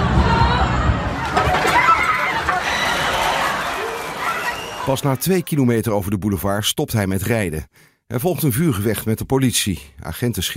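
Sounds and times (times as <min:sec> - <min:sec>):
dense chaotic roar of a panicked crowd fleeing: 0:00.0 - 0:05.5
panicked crowd screaming: 0:00.0 - 0:05.5
panicked crowd shouting: 0:00.2 - 0:05.2
speech: 0:04.9 - 0:10.5.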